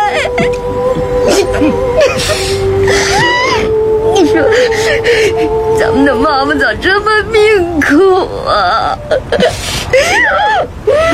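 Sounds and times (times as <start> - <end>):
woman crying: 0.0 - 11.1
speech: 0.3 - 0.7, 1.3 - 2.7, 5.0 - 11.1.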